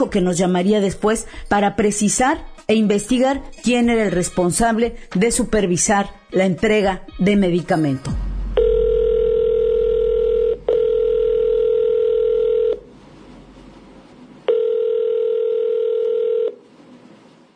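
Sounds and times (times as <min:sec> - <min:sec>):
speech: 0:00.0 - 0:08.2
phone line ringing out unanswered: 0:08.6 - 0:12.9, 0:14.5 - 0:16.6.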